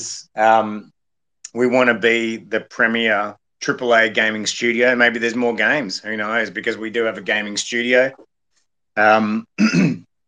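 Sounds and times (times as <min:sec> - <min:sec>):
speech: 0:00.0 - 0:00.9, 0:01.5 - 0:08.3, 0:09.0 - 0:10.0
person clearing throat: 0:09.4 - 0:10.1.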